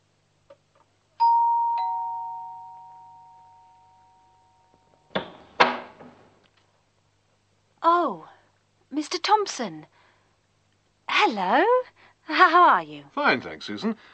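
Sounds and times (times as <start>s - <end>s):
two-note ding-dong doorbell chime: 1.2s - 5.1s
sharp clunks: 5.1s - 6.3s
speech: 7.8s - 8.3s, 8.9s - 10.0s, 11.2s - 14.1s.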